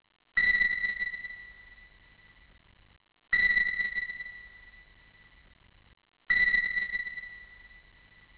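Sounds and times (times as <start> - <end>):
pings: 0.4 - 1.9, 3.4 - 4.9, 6.3 - 7.9.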